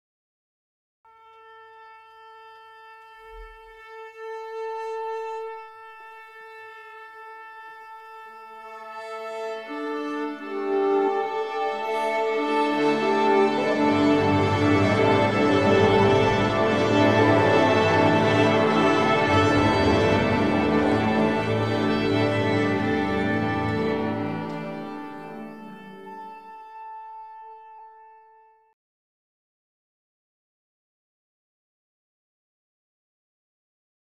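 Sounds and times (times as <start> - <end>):
orchestra tuning up: 9.6 - 27.2.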